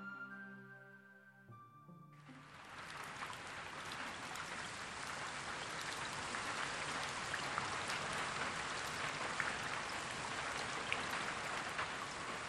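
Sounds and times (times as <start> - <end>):
steady rain falling on a summer night: 2.1 - 12.4.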